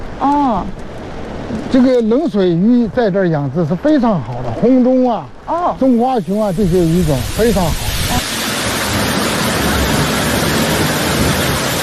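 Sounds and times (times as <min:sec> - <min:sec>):
rushing water from a mountain gorge waterfall above a lake: 0:00.0 - 0:11.8
speech: 0:00.2 - 0:00.9, 0:01.5 - 0:08.3.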